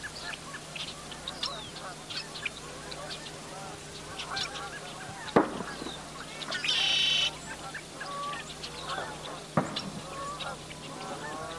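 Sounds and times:
geese honking at sunrise: 0:00.0 - 0:11.5
outdoor chorus of smaller birds: 0:00.0 - 0:11.5
sharp pops: 0:05.3 - 0:06.9, 0:09.6 - 0:10.0.

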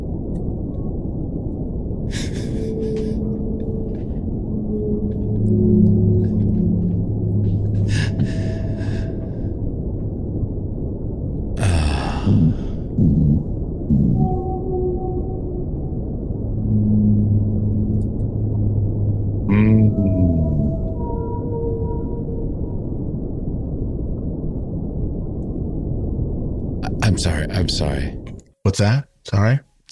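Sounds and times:
steady underwater rumble: 0:00.0 - 0:28.4
whale song: 0:00.6 - 0:09.6, 0:11.6 - 0:25.7
speech: 0:28.8 - 0:29.7.

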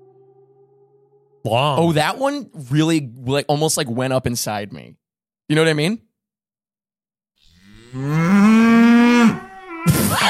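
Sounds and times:
speech: 0:01.4 - 0:06.1, 0:07.9 - 0:08.5
cow mooing: 0:07.4 - 0:09.7.

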